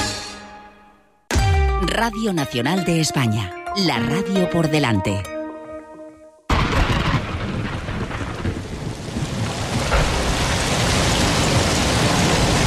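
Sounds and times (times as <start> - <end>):
speech: 1.8 - 5.3
deep thunderous rumbling: 6.5 - 12.6
heavy rain pouring: 6.5 - 12.6.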